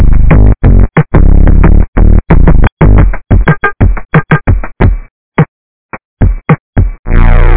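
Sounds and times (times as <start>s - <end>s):
drum: 0.0s - 5.5s, 6.2s - 7.4s.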